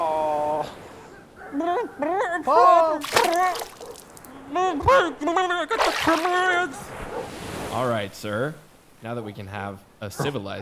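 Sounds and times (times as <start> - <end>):
speech: 1.9 - 3.7, 4.5 - 10.6
dog splashing in water: 3.0 - 4.1.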